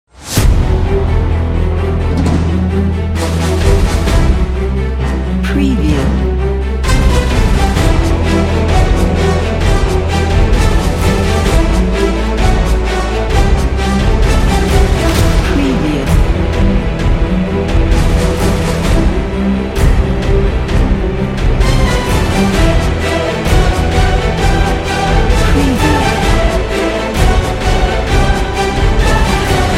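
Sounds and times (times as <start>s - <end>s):
epic heroic orchestral trailer music: 0.1s - 29.7s.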